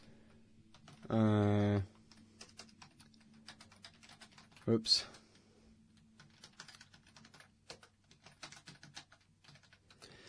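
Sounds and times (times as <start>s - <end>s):
typing on a computer keyboard: 0.7s - 1.1s, 2.0s - 4.7s, 6.0s - 10.2s
speech: 1.1s - 1.4s, 4.7s - 5.1s.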